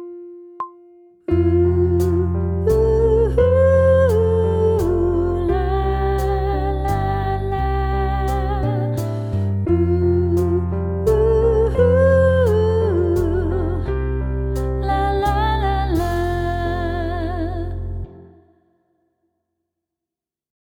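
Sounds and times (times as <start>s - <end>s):
person sight singing pop vocals: 1.3s - 9.1s, 9.7s - 13.9s, 14.8s - 18.4s.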